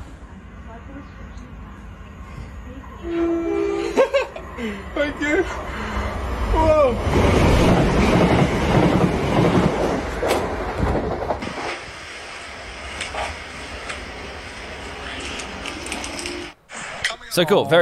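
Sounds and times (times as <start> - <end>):
Class 377 passenger train passing at speed: 0.0 - 16.6
speech: 3.0 - 3.4, 4.6 - 5.8, 6.5 - 7.5, 17.4 - 17.8
laughter: 3.8 - 5.6
train rattles and clicks on the rails: 7.6 - 11.6, 14.8 - 16.5.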